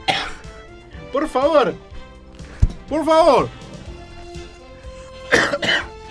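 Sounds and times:
person coughing from smoke in a studio: 0.0 - 0.5, 5.2 - 6.0
speech: 1.1 - 1.9, 2.9 - 3.6.

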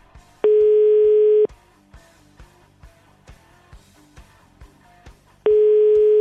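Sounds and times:
telephone ringback tone on a call to an unreachable mobile phone: 0.4 - 1.5, 5.5 - 6.2.

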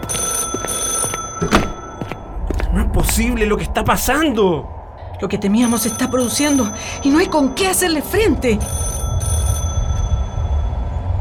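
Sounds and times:
telephone bell ringing with a metallic trill: 0.0 - 2.3, 5.6 - 11.1
speech: 3.2 - 8.8.

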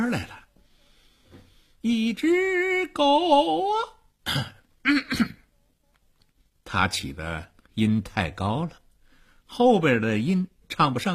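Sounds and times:
speech: 0.1 - 0.4, 1.8 - 5.4, 6.7 - 8.8, 9.5 - 11.1
man clearing his throat: 4.2 - 5.5.

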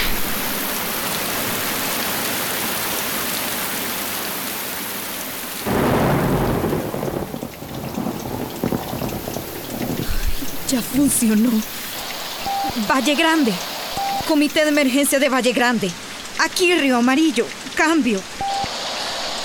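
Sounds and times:
heavy rain: 0.0 - 19.4
loud deep thunder rumbling: 5.7 - 14.8
speech: 10.7 - 11.8, 12.8 - 13.7, 14.3 - 18.4.

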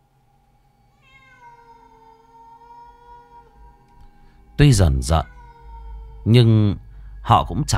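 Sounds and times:
cat meowing at night: 1.0 - 6.8
low rumble: 2.8 - 7.7
speech: 4.6 - 5.3, 6.2 - 7.7.

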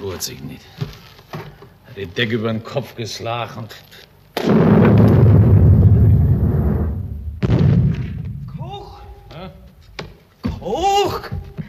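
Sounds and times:
speech: 0.2 - 1.4, 2.0 - 5.2, 10.7 - 11.4
heavy gunfire blasts from a wartime scene in a radio play: 4.4 - 8.6.

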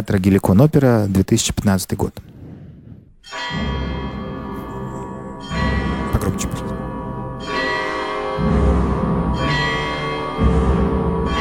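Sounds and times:
speech: 0.0 - 2.3
famous church bell peal in an opera theatre recording: 3.2 - 11.4.

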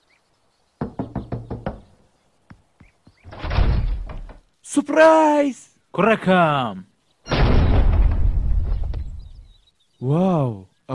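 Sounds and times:
knocking on a door in an animated cartoon: 0.8 - 2.0
thuds: 2.5 - 4.5, 7.3 - 9.2
speech: 4.7 - 6.9, 10.0 - 10.9.

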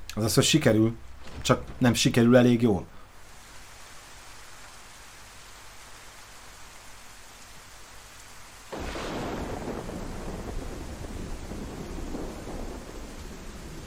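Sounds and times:
steady rain hiss in a video game thunderstorm: 0.0 - 13.8
speech: 0.2 - 3.0
deep rumble of thunder in a video game thunderstorm: 8.7 - 13.8.

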